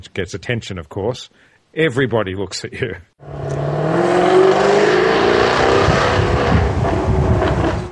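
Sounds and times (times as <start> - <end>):
speech: 0.0 - 3.6
sports car exhaust revving with crackles: 3.2 - 7.9.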